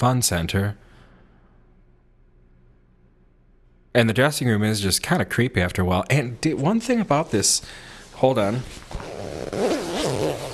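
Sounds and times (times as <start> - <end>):
speech: 0.0 - 0.9, 3.9 - 9.8
coat zipper zipping up in a dressing room: 8.8 - 10.5.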